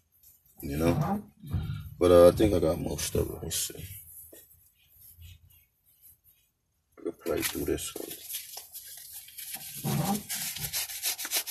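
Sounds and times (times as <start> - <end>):
speech: 0.6 - 4.0, 7.4 - 8.3
edge of a business card scraping something off a surface: 9.5 - 11.4.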